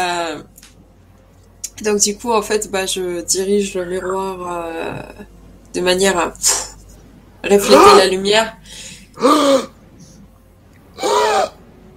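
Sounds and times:
speech: 1.8s - 6.7s, 7.4s - 9.7s
slow raspy human-like breaths: 8.6s - 10.3s.

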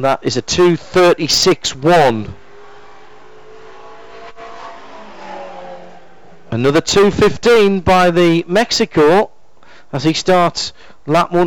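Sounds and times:
speech: 0.0s - 2.4s, 6.6s - 9.3s, 9.9s - 11.4s
Capri race car passing on track during a six-hour endurance race: 0.4s - 8.4s.

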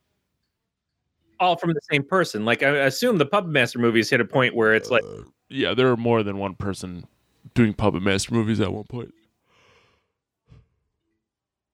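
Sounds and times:
speech: 1.4s - 9.2s
person yawning: 4.6s - 5.3s.

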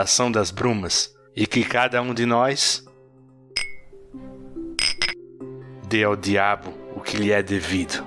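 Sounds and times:
speech: 0.0s - 2.9s, 5.9s - 8.0s
wine glasses clinking in a toast: 3.6s - 3.9s, 4.8s - 5.2s.

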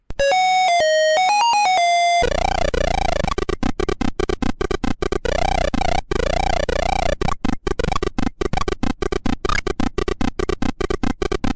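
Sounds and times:
bright electronic beeps and warbling tones of retro computer game: 0.2s - 11.5s
rapid bleeps and buzzy swooping retro video game sound effects: 0.2s - 11.5s.

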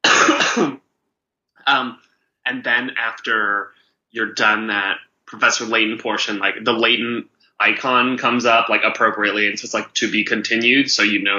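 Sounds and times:
loud harsh cough: 0.0s - 0.8s
speech: 0.6s - 0.8s, 1.6s - 11.3s.

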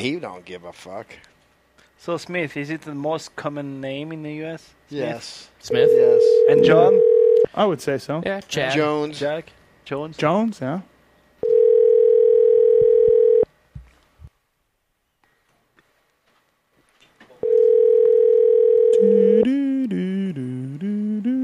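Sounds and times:
speech: 0.0s - 1.4s, 2.0s - 10.9s, 19.0s - 20.0s
phone ringback tone of an outgoing call: 5.8s - 7.5s, 11.4s - 13.4s, 17.4s - 19.5s.

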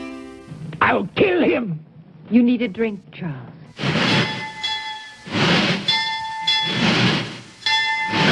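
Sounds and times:
speech: 0.9s - 4.0s
steady high metallic hum of a train: 3.8s - 8.3s
train wheels rumbling on rails: 3.8s - 8.3s.

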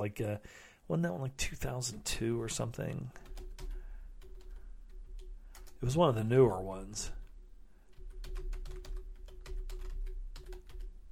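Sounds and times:
speech: 0.0s - 3.3s, 5.8s - 7.2s
steady low hum: 1.4s - 11.1s
fingers typing on a computer keyboard: 3.2s - 5.8s, 7.9s - 11.1s.

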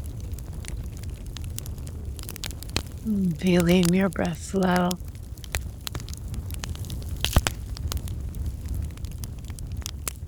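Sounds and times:
low continuous rumble of burning: 0.0s - 4.2s, 4.9s - 10.2s
fire crackling: 0.0s - 10.2s
speech: 3.0s - 5.1s
pops and snaps of fire: 7.2s - 7.6s.

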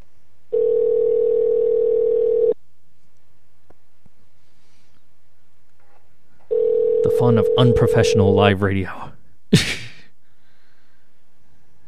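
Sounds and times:
electronic phone ringing tone of a call placed to a group call: 0.5s - 2.6s, 6.5s - 8.4s
speech: 7.2s - 9.8s.

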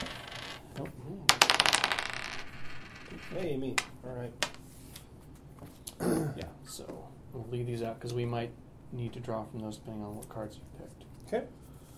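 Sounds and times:
dice rolled to decide who goes first in a card game: 0.0s - 0.7s, 1.3s - 4.6s
speech: 3.3s - 4.5s, 6.4s - 11.6s.

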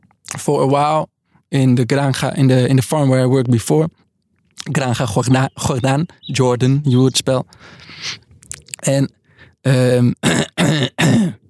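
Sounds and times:
speech: 0.4s - 4.0s, 4.6s - 8.2s, 8.8s - 11.2s
throat clearing from someone with a dry throat: 10.2s - 11.4s.

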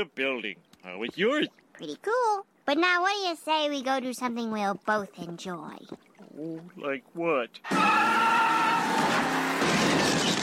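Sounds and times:
speech: 0.0s - 9.2s
car tires screeching in a burnout: 7.6s - 10.4s
car engine roar: 7.7s - 10.4s.

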